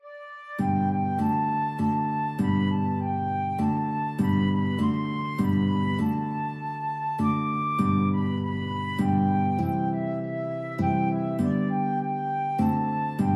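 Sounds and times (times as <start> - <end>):
guitar in a guitar and flute duet: 0.0 - 13.3.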